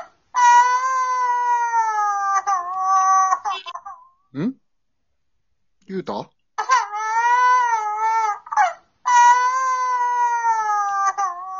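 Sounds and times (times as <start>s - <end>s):
baby crying in loud drawn-out wails: 0.0s - 4.1s, 6.6s - 11.5s
speech: 4.4s - 4.6s, 5.9s - 6.4s.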